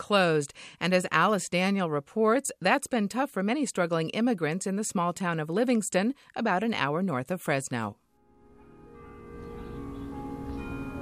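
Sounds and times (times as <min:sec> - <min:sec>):
speech: 0:00.0 - 0:08.0
church bell tolling in Livingston California: 0:08.3 - 0:11.0.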